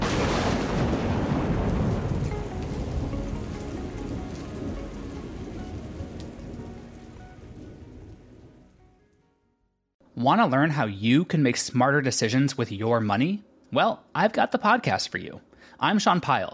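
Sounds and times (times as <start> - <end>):
deep roll of thunder: 0.0 - 8.8
heavy rain pouring on a surface: 0.0 - 8.8
speech: 10.2 - 16.5.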